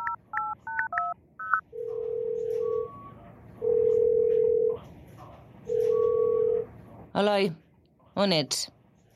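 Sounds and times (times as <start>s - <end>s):
phone ringing tones: 0.0s - 4.8s, 5.7s - 6.7s
speech: 7.2s - 7.6s, 8.2s - 8.8s.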